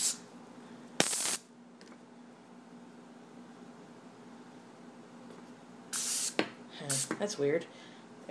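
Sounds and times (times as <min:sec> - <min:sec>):
aerosol cooking spray hissing onto a pan: 0:00.0 - 0:00.2, 0:01.0 - 0:01.4, 0:05.9 - 0:07.2
speech: 0:06.9 - 0:08.2.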